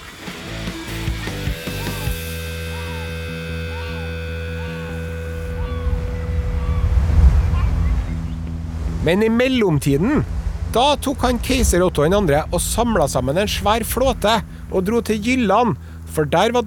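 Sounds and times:
rolling ocean surf: 0.0 - 16.6
faint sustained tones: 0.8 - 16.6
wind rushing over ocean surf: 5.8 - 9.2, 9.8 - 14.8
speech: 9.0 - 16.6.

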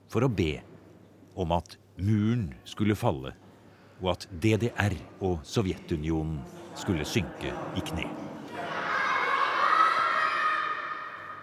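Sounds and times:
speech: 0.1 - 0.7, 1.4 - 3.4, 4.0 - 8.3
children shouting at a Christmas service: 8.5 - 11.4.

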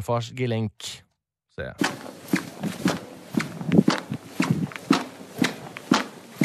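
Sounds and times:
speech: 0.0 - 1.0, 1.6 - 2.3
footsteps in badly squeaking shoes: 1.8 - 6.4.

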